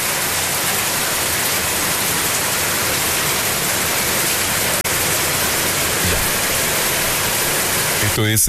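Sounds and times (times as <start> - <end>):
heavy rain: 0.0 - 8.4
speech: 8.2 - 8.4.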